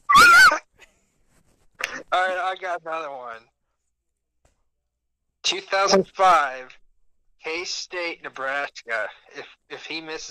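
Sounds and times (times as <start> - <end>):
dog yelping while playfully attacking its owner: 0.0 - 0.6
speech: 2.2 - 3.6, 5.4 - 6.8, 7.4 - 10.3.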